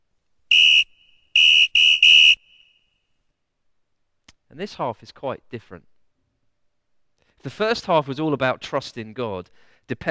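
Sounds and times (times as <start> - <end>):
referee whistle blasts: 0.5 - 3.0
speech: 4.6 - 5.9, 7.4 - 10.0.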